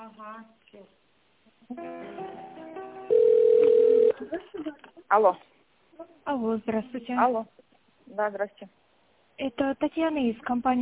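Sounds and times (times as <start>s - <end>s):
speech: 0.1s - 3.2s, 4.2s - 8.8s, 9.4s - 10.7s
telephone ringing with electronic tones on an incoming call: 3.1s - 4.2s.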